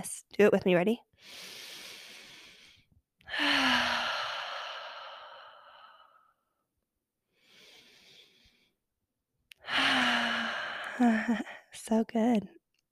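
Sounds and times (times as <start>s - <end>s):
speech: 0.0s - 1.6s, 11.0s - 12.9s
big deep breaths with long loud sighing exhale: 1.2s - 6.5s, 7.3s - 8.8s, 9.6s - 11.7s.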